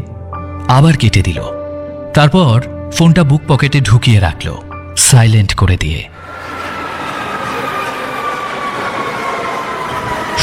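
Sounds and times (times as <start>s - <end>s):
speech: 0.7s - 6.4s
metro train wheels rumbling as it pulls into a station: 6.2s - 10.4s.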